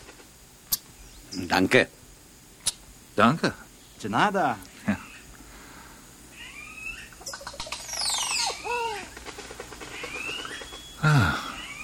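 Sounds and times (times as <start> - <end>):
soft outdoor background: 0.0 - 11.8
speech: 1.3 - 2.0, 3.2 - 4.7
birds chirping and trilling: 3.7 - 11.8.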